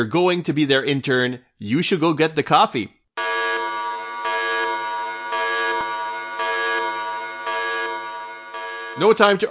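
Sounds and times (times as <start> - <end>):
speech: 0.0 - 3.0, 9.0 - 9.4
loud harsh electronic alarm buzzer: 3.2 - 9.2.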